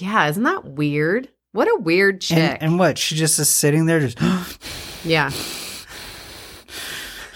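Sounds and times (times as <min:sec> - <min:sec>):
speech: 0:00.0 - 0:05.6
voice imitating heavy breathing into a phone: 0:04.2 - 0:07.3.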